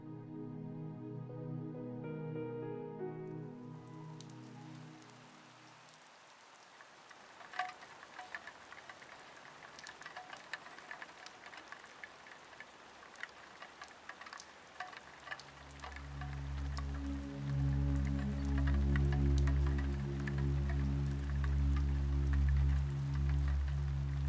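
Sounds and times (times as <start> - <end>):
gentle tonal music: 0.0 - 6.1, 15.3 - 24.2
soft rain pattering on window glass: 3.8 - 24.2.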